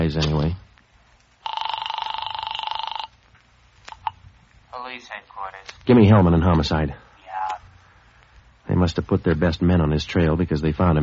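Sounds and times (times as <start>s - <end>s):
speech: 0.1s - 0.6s, 5.0s - 7.0s, 8.7s - 11.0s
old telephone bell ringing: 1.4s - 3.1s.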